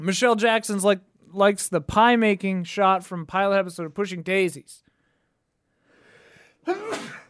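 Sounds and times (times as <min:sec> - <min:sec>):
speech: 0:00.0 - 0:04.8, 0:06.6 - 0:07.2
breathy inhale: 0:04.9 - 0:06.6
sneeze: 0:06.6 - 0:07.2.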